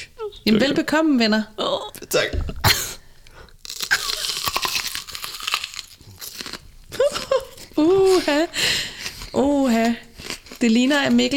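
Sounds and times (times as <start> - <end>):
speech: 0.5 - 2.5, 7.8 - 8.8, 9.4 - 10.0, 10.6 - 11.3
short breathy sounds: 2.8 - 3.6, 8.5 - 9.4
people crunching and chewing a raw onion: 3.0 - 11.3.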